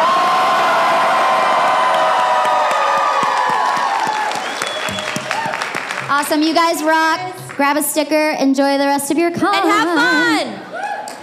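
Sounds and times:
convention crowd yelling and cheering loudly: 0.0 - 7.6, 9.8 - 11.2
scattered claps: 1.9 - 7.6
speech: 6.3 - 10.7.

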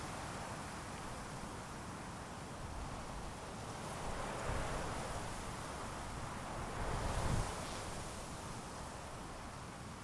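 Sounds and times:
wind rushing through sage on prairie at a wildlife refuge: 0.0 - 10.0.

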